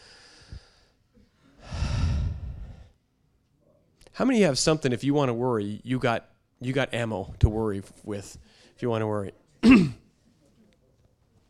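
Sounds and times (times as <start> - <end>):
deep breath during a church sermon: 0.0 - 3.0
speech: 4.2 - 10.0.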